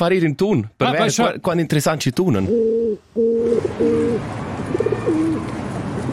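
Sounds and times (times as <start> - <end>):
speech: 0.0 - 4.5
pigeons cooing: 2.5 - 6.1.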